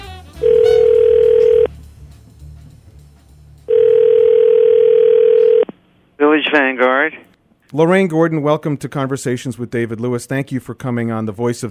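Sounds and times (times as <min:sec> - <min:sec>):
loud steady telephone dial tone: 0:00.4 - 0:01.7, 0:03.7 - 0:05.7
speech: 0:06.5 - 0:11.6.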